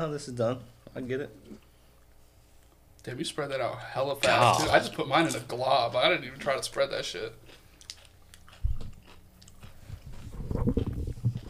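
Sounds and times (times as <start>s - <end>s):
speech: 0.0s - 1.7s, 3.0s - 7.5s
crunchy chewing: 6.6s - 11.4s.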